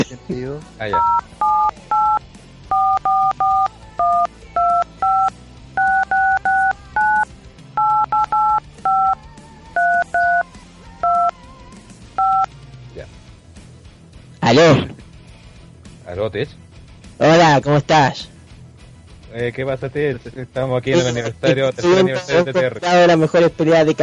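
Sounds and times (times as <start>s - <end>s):
speech: 0.1s - 1.9s, 14.5s - 14.9s, 16.2s - 16.6s, 17.6s - 18.3s, 19.4s - 24.0s
telephone keypad dialing tones for an international call: 1.0s - 7.2s, 7.8s - 9.2s, 9.8s - 10.4s, 11.0s - 11.3s, 12.2s - 12.5s.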